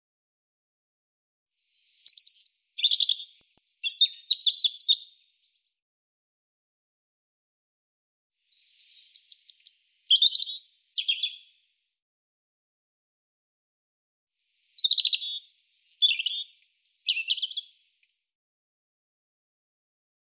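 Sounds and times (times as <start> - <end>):
European robin singing: 2.0 - 5.2, 8.5 - 11.5, 14.7 - 17.8.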